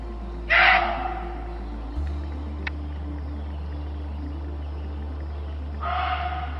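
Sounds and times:
steady low rumble: 0:00.0 - 0:06.5
muntjac deer screaming: 0:00.5 - 0:01.3, 0:05.8 - 0:06.5.

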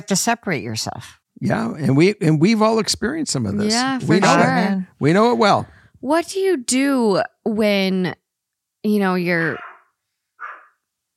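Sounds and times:
speech: 0:00.0 - 0:08.2, 0:08.8 - 0:09.7
dog bark: 0:09.6 - 0:10.8.

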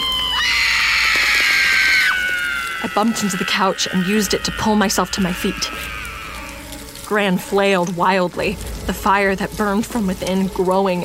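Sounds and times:
two women screaming, terrified and enraged: 0:00.0 - 0:06.8
speech: 0:03.0 - 0:06.0, 0:07.1 - 0:11.0.

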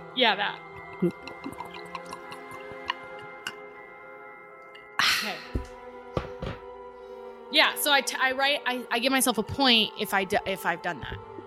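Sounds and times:
speech: 0:00.2 - 0:01.6, 0:07.5 - 0:11.2
whiskey pouring into a glass: 0:00.7 - 0:03.6.

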